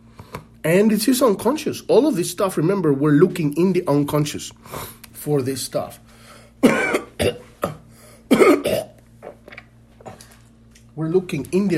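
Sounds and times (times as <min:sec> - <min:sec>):
speech: 0:00.6 - 0:06.8, 0:11.1 - 0:11.7
person coughing: 0:06.6 - 0:09.0.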